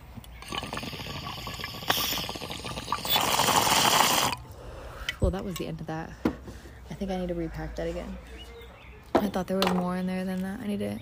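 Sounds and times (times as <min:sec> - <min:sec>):
water bubbling and gurgling in a bong being smoked outdoors: 0:00.0 - 0:04.5
speech: 0:05.3 - 0:06.3, 0:07.0 - 0:08.4, 0:09.2 - 0:11.0.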